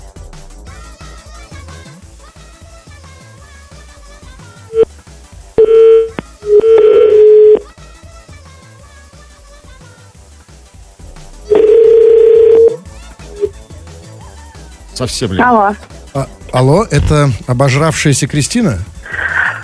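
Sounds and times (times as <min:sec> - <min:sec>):
telephone ringback tone while placing a call: 0:05.6 - 0:07.6, 0:11.5 - 0:12.8
speech: 0:15.0 - 0:18.9.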